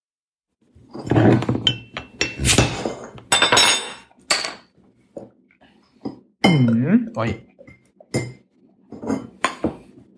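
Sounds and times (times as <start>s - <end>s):
glass clinking: 1.6s - 4.7s, 6.0s - 9.8s
speech: 7.2s - 7.5s.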